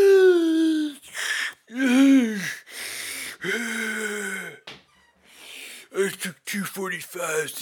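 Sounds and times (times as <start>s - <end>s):
man imitating gasping for breath with wheezing gasps and raspy groans: 0.0s - 4.6s
speech: 6.2s - 7.6s.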